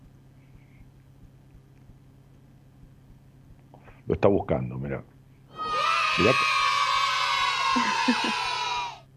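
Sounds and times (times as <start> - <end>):
speech: 4.1 - 5.2, 6.2 - 6.5, 8.1 - 8.5
dense crowd of fans screaming and cheering at high pitch: 5.5 - 9.0
individual yells from the crowd: 5.5 - 9.0.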